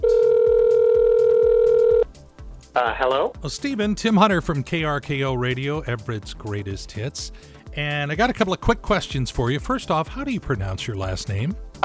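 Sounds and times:
telephone dial tone: 0.0s - 2.0s
speech: 2.8s - 11.7s.

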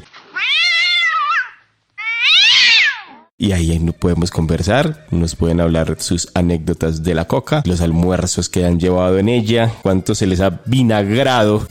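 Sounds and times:
cat meowing: 0.3s - 3.3s
speech: 3.4s - 11.6s.

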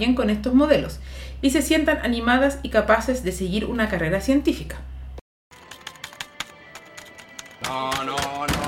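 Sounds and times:
speech: 0.0s - 4.9s
computer keyboard keys being pressed: 5.5s - 8.5s.

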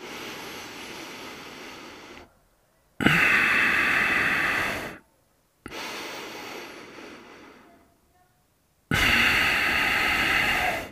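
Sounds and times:
rapid forceful breathing through the nose as an activating breathing exercise: 0.0s - 2.4s, 3.0s - 5.0s, 5.6s - 7.8s, 8.9s - 10.9s.

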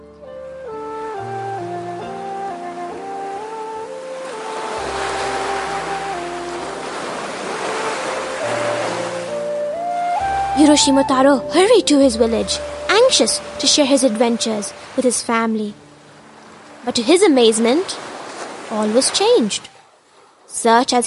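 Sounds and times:
gentle sustained musical melody: 0.0s - 20.0s
ocean waves washing and surging: 0.4s - 21.0s
speech: 10.6s - 15.8s, 16.8s - 18.0s, 18.7s - 19.7s, 20.6s - 21.0s.

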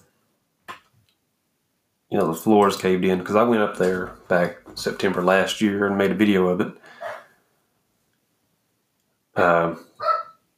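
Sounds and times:
speech: 2.1s - 7.0s, 9.4s - 9.9s
dog barking: 7.0s - 7.3s, 10.0s - 10.4s.

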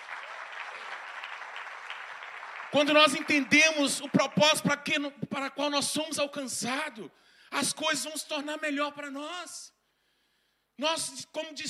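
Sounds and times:
congregation applauding during a church service: 0.0s - 5.1s
speech: 2.7s - 9.8s, 10.8s - 11.6s.

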